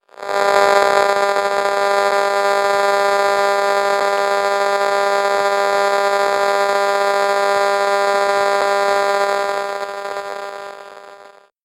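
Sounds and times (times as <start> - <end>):
electromagnetic transmission between a video game console and a wireless controller: 0.0 - 11.5.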